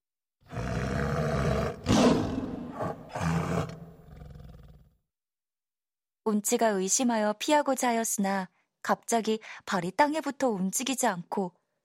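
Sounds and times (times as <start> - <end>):
white tiger roaring: 0.5 - 5.0
speech: 6.3 - 11.6.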